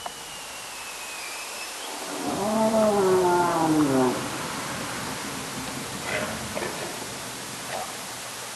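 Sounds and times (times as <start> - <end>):
steady hydrophone hiss: 0.0 - 8.5
whale moan recorded underwater by hydrophones off Alaska: 2.0 - 4.5.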